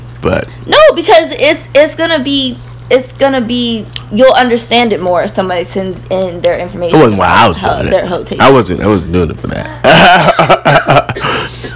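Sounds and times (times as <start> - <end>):
speech: 0.2 - 11.0
heavy chesty hacking coughing: 9.8 - 11.7
laughter: 9.8 - 11.7.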